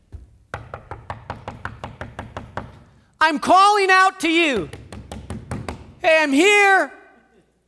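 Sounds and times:
knocking on a wooden door: 0.1s - 2.8s, 4.6s - 5.9s
speech: 3.2s - 4.8s, 6.0s - 7.0s.

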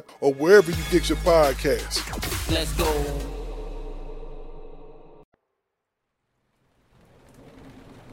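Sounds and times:
speech: 0.0s - 3.3s
heavy driving tropical rain from a storm on St. Lucia: 6.4s - 8.1s.

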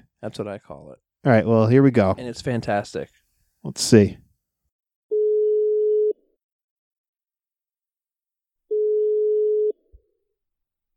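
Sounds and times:
speech: 0.2s - 4.2s
phone line ringback tone: 5.1s - 6.2s, 8.7s - 9.8s.

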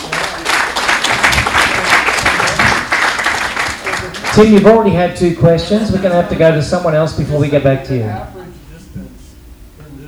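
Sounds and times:
room full of people applauding: 0.0s - 7.6s
speech: 4.4s - 8.3s.

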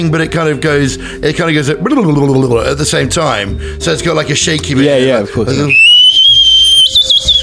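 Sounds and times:
speech: 0.0s - 5.8s
swanee slide whistle being blown: 5.7s - 7.4s.

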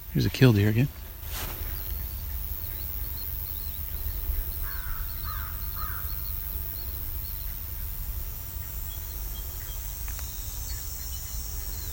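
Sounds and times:
crickets and insects droning: 0.0s - 11.9s
faint bird calls: 0.0s - 11.9s
speech: 0.2s - 1.0s
American crow cawing: 4.6s - 6.4s.

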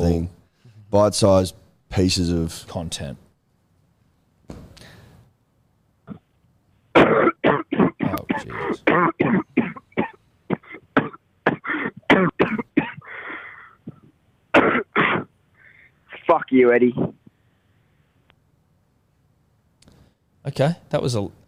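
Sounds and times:
speech: 0.1s - 3.2s, 16.5s - 17.2s, 20.4s - 21.4s
man coughing: 7.0s - 15.3s.

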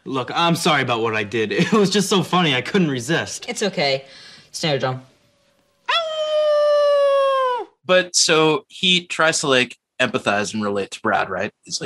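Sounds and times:
speech: 0.0s - 5.1s, 7.9s - 11.8s
person howling like a wolf: 5.9s - 7.8s.

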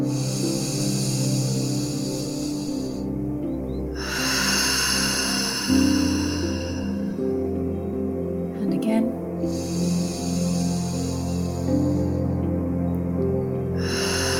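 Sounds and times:
deep meditation breathing, inhaling and exhaling: 0.0s - 8.5s, 9.1s - 14.3s
soft sustained tonal music: 0.0s - 14.3s.

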